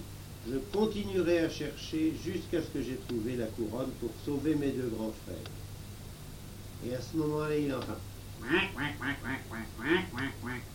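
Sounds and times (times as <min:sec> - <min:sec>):
speech: 0:00.5 - 0:05.6, 0:06.8 - 0:10.7
duck quacking: 0:08.4 - 0:10.7.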